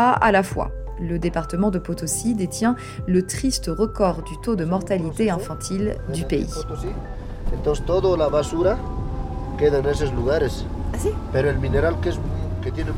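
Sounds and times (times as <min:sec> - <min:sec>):
speech: 0:00.0 - 0:09.0, 0:09.6 - 0:12.9
heavy road traffic rumble with engine drone: 0:05.0 - 0:12.9.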